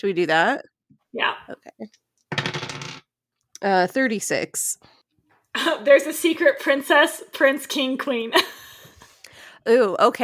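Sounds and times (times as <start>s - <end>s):
speech: 0.0s - 2.0s, 3.6s - 5.0s, 5.6s - 8.7s, 9.6s - 10.2s
dice clattering and rattling on a surface: 2.3s - 3.0s.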